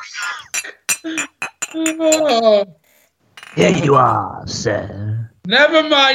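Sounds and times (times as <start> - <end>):
voice imitating glass clinking: 0.0 - 2.7
speech: 0.6 - 2.8, 3.6 - 6.1.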